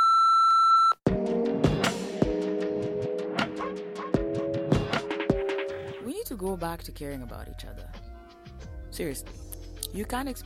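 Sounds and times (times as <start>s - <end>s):
voicemail answering machine beep: 0.0s - 1.0s
loud rhythmic music with sharp percussive hits: 1.1s - 7.0s, 7.6s - 10.4s
speech: 6.3s - 8.1s, 9.0s - 10.4s.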